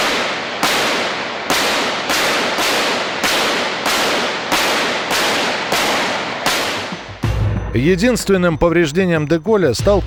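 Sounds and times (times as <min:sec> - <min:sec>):
gunshots fired at a presidential car: 0:00.0 - 0:07.3
speech: 0:07.8 - 0:10.0.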